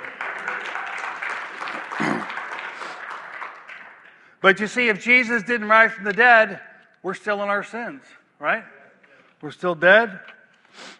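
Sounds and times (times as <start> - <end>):
audience applause: 0.0 - 4.3
speech: 4.4 - 8.8, 9.4 - 10.9.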